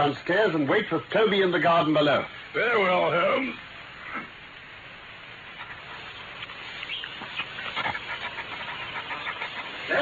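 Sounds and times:
speech: 0:00.0 - 0:04.3
dog panting and sniffing: 0:05.5 - 0:10.0.

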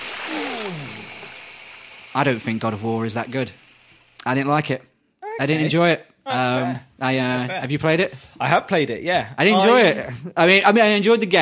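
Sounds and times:
bucket of hot water thrown over a person: 0:00.0 - 0:02.9
speech: 0:02.1 - 0:03.6, 0:04.2 - 0:11.3.

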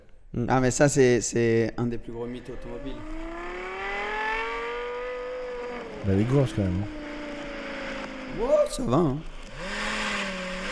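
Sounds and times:
speech: 0:00.3 - 0:03.3, 0:06.0 - 0:07.0, 0:08.3 - 0:09.7
sports car engine revving through Yamaha-developed exhaust: 0:02.1 - 0:10.7.

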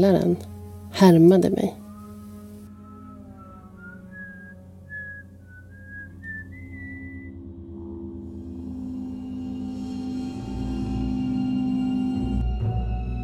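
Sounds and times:
speech: 0:00.0 - 0:01.8
low steady hum: 0:00.0 - 0:12.7
person whistling a short wavering melody: 0:02.8 - 0:07.4.

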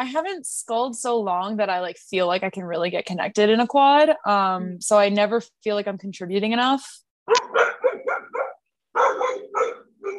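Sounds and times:
speech: 0:00.0 - 0:07.8
dog barking: 0:07.3 - 0:10.1.

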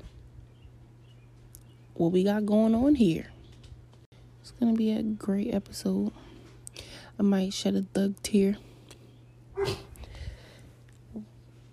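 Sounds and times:
low steady hum: 0:00.0 - 0:11.7
speech: 0:02.0 - 0:03.4, 0:04.6 - 0:06.2, 0:07.2 - 0:08.7
dog barking: 0:09.6 - 0:10.0.

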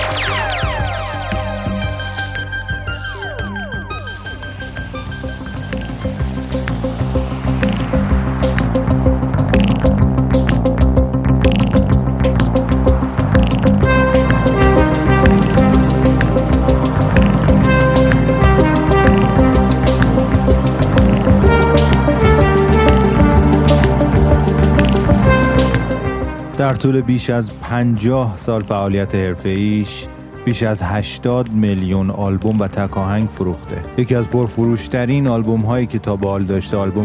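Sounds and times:
electronic synthesizer music: 0:00.0 - 0:27.2
speech: 0:26.8 - 0:37.0.

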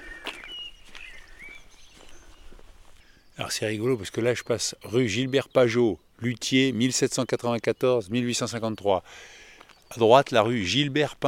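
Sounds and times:
faint footsteps: 0:00.0 - 0:03.2, 0:09.4 - 0:10.0
common blackbird singing: 0:00.0 - 0:11.2
speech: 0:03.4 - 0:11.2.

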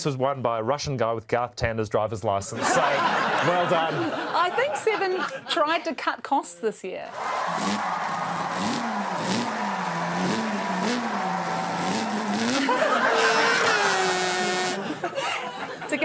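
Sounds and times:
speech: 0:00.0 - 0:08.0
laughter: 0:02.6 - 0:05.9, 0:07.5 - 0:16.0
voice imitating a race car engine: 0:11.8 - 0:15.0.

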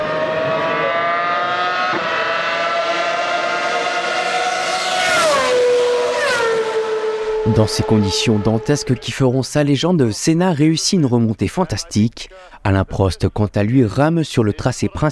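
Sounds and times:
Formula One race car engines screaming on a rain-soaked track: 0:00.0 - 0:09.3
speech: 0:07.5 - 0:15.1.

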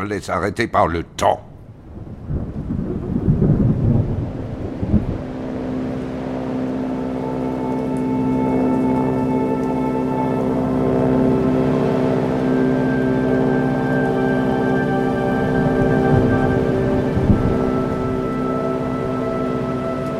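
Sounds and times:
speech: 0:00.0 - 0:01.5
rolling thunder in a thunderstorm: 0:01.5 - 0:07.0, 0:15.2 - 0:20.1
droning mechanical hum with a faint tonal whine: 0:03.1 - 0:20.1.

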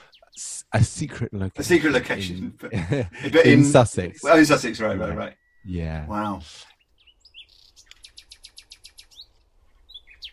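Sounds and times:
speech: 0:00.3 - 0:06.7
laughter: 0:01.6 - 0:05.3
nightingale singing: 0:05.2 - 0:05.8, 0:06.6 - 0:10.3.

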